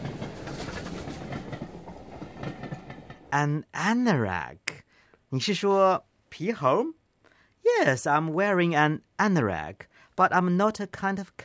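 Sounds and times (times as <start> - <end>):
train wheels clattering over the track: 0.0 - 3.3
Class 170 Turbostar British diesel multiple unit train from Edinburgh rumbling: 0.0 - 3.5
speech: 3.3 - 4.6, 5.3 - 7.0, 7.6 - 11.4.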